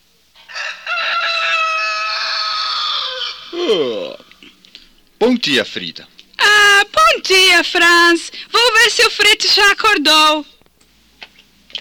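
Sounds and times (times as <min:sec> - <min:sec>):
rooster crowing: 0:00.4 - 0:04.4
speech: 0:03.7 - 0:04.1, 0:05.2 - 0:06.2, 0:07.2 - 0:10.5.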